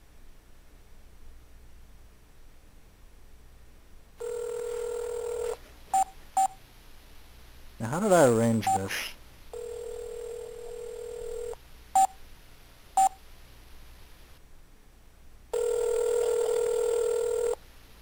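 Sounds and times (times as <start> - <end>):
telephone ringback tone: 4.2 - 6.6, 9.6 - 12.1, 15.6 - 17.6
telephone keypad beeps: 6.0 - 6.6, 13.0 - 13.2
speech: 7.9 - 9.2.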